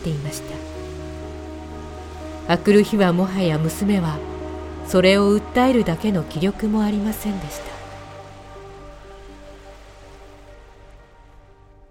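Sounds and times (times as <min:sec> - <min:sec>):
speech: 0:00.0 - 0:00.7, 0:02.5 - 0:04.3, 0:04.9 - 0:07.7
heavy rain pouring during a storm: 0:00.0 - 0:11.4
low sustained tones: 0:00.0 - 0:11.8.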